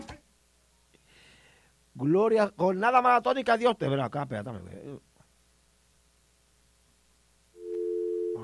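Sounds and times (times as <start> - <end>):
speech: 2.1 - 5.1
steady loud telephone line tone: 7.6 - 8.4.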